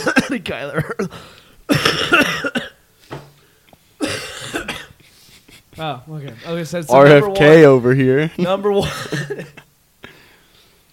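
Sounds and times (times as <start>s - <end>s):
person with a bad cough coughing harshly: 0.0s - 2.8s, 4.0s - 5.0s, 8.8s - 9.7s
speech: 0.2s - 1.9s, 5.8s - 9.6s.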